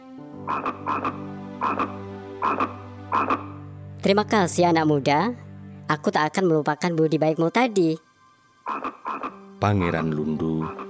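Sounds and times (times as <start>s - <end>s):
frog croaking: 0.5s - 3.6s, 8.6s - 10.8s
speech: 0.5s - 8.0s, 9.6s - 10.8s.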